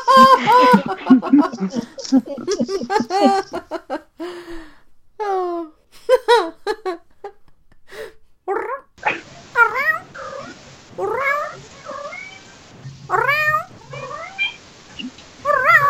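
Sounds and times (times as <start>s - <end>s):
laughter: 0.0s - 4.1s
cat meowing: 9.0s - 15.8s.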